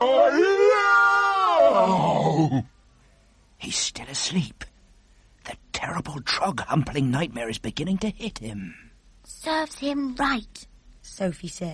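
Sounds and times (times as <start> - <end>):
person imitating the fearful roar of a 54-foot giant: 0.0 - 2.7
speech: 6.4 - 8.9, 9.5 - 11.7.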